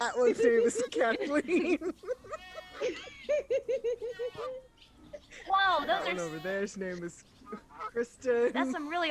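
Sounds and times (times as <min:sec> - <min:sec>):
laughter: 0:00.0 - 0:05.5
speech: 0:00.1 - 0:03.6, 0:05.4 - 0:09.1
goat bleating in a goat pen: 0:02.2 - 0:03.1, 0:03.9 - 0:04.8, 0:05.5 - 0:08.0.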